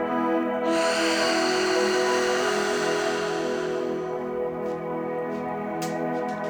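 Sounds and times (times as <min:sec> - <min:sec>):
sustained musical drone: 0:00.0 - 0:06.4
long audible exhale through the mouth during a breathing exercise: 0:00.7 - 0:04.8
deep breath drawn in through the nose during a breathing exercise: 0:00.7 - 0:05.3.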